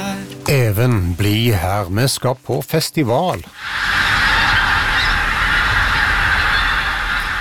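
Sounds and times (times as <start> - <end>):
speech: 0.5 - 4.1
large flocks of pink-footed geese calling in Beitstad, Trøndelag: 3.6 - 7.3.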